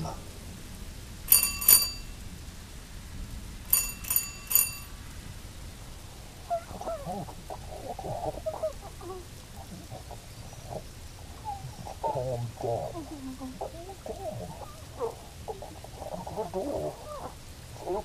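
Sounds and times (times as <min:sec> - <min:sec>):
voice from behind a door: 0:00.0 - 0:00.3, 0:06.4 - 0:18.0
steady rain: 0:00.0 - 0:18.0
old-fashioned twist doorbell ringing: 0:01.3 - 0:02.2, 0:03.7 - 0:05.0.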